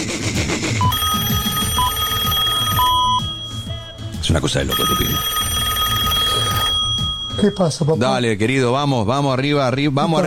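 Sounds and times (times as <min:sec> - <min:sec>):
phone line ringing back on an outgoing call with short electronic tones: 0:00.8 - 0:08.0
speech: 0:04.4 - 0:05.4, 0:07.4 - 0:10.2.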